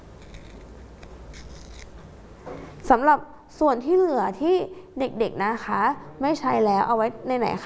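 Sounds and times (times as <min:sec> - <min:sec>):
paper slowly torn by hand: 0:00.2 - 0:02.0
speech: 0:02.5 - 0:07.6.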